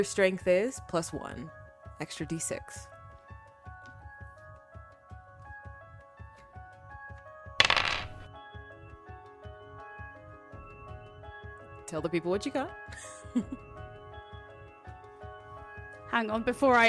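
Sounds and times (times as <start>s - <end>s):
speech: 0.0s - 2.9s, 11.9s - 13.6s, 16.1s - 16.8s
six-sided dice rolled on a table: 7.6s - 8.3s.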